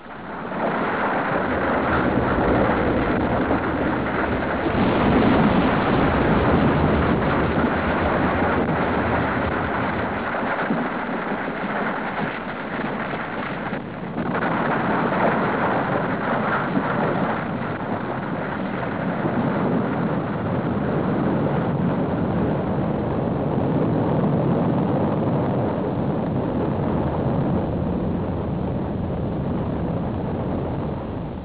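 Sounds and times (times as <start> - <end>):
volcanoes: 0.0 - 31.4.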